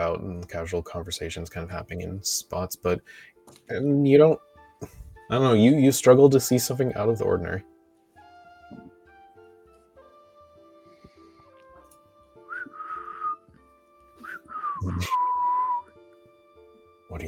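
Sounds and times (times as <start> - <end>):
speech: 0.1 - 7.7, 14.8 - 15.2
person whistling in a city at night: 12.3 - 13.6, 14.2 - 16.0.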